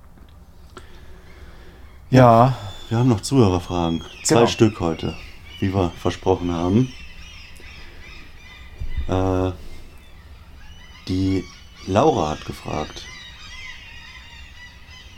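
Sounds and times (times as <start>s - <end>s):
speech: 2.1s - 7.0s, 9.1s - 9.6s, 11.1s - 13.1s
loud harsh honking bird calls outside: 2.2s - 13.9s.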